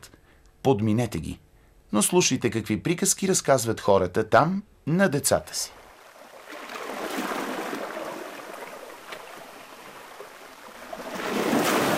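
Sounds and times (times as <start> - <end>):
speech: 0.6 - 5.8
waves washing against the shore of Lake Van at dusk: 6.1 - 11.9.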